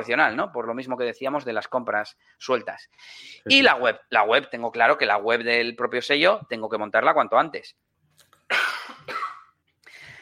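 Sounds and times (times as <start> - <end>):
speech: 0.0 - 7.9, 8.5 - 8.8
harsh coughs: 8.5 - 9.6.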